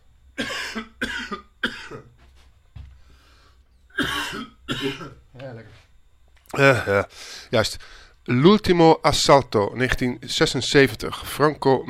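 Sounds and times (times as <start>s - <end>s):
person coughing harshly: 0.4s - 2.2s, 3.9s - 5.2s
softer throat-clearing rasp: 0.4s - 2.2s, 3.9s - 5.2s
speech: 6.6s - 11.8s.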